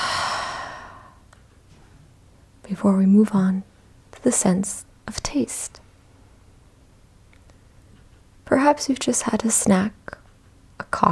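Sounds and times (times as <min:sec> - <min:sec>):
slow soft airy exhalation: 0:00.0 - 0:01.2
speech: 0:02.7 - 0:05.8, 0:08.5 - 0:10.1, 0:10.9 - 0:11.1.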